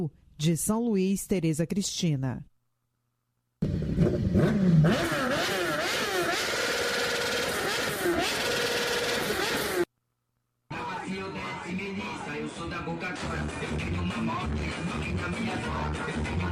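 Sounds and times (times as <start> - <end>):
speech: 0.0 - 2.5, 3.6 - 5.6, 11.7 - 16.5
motorcycle exhaust revving: 3.6 - 9.9.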